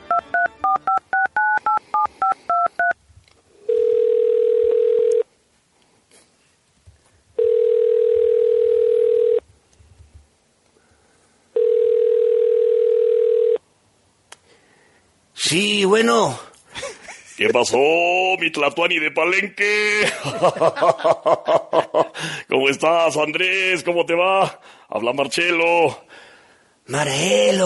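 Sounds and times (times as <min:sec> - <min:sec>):
long steady telephone ringback tones: 0:00.1 - 0:03.0, 0:03.7 - 0:05.2, 0:07.4 - 0:09.4, 0:11.6 - 0:13.6
speech: 0:16.0 - 0:16.4, 0:17.4 - 0:26.3, 0:26.9 - 0:27.6
laughter: 0:16.7 - 0:17.6, 0:20.0 - 0:22.2.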